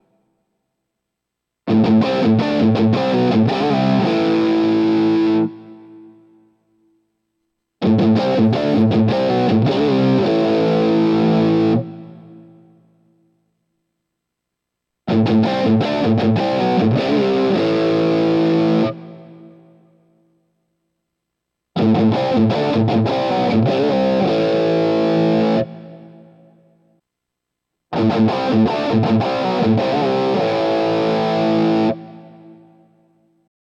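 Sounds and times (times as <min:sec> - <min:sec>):
crunchy electric guitar through a split mini humbucker pickup: 0:01.7 - 0:06.3, 0:07.8 - 0:12.8, 0:15.1 - 0:19.9, 0:21.8 - 0:26.8, 0:27.9 - 0:33.2.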